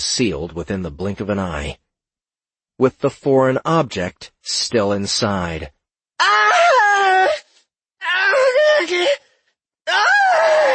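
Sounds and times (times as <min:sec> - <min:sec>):
speech: 0:00.0 - 0:01.8, 0:02.8 - 0:06.7
woman screaming and wailing in pain: 0:06.2 - 0:07.4, 0:08.0 - 0:09.2, 0:09.9 - 0:10.7.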